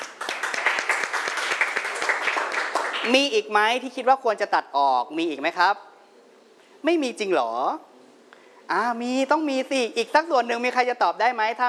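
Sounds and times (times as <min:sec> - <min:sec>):
room full of students applauding in a classroom: 0:00.0 - 0:03.2
speech: 0:03.0 - 0:05.9, 0:06.8 - 0:07.9, 0:08.7 - 0:11.6.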